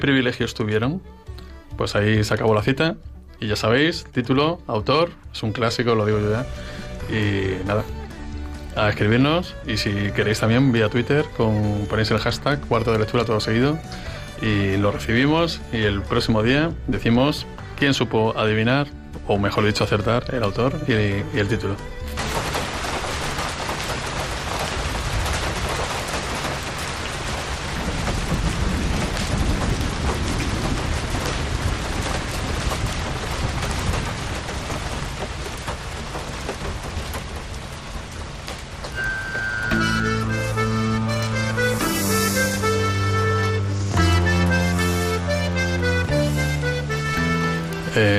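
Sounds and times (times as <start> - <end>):
speech: 0.0 - 8.0, 8.8 - 22.2
gentle tonal music: 0.0 - 22.2, 38.9 - 48.1
steady dense rain: 0.0 - 48.1
low distant rumbles of thunder: 22.2 - 41.8.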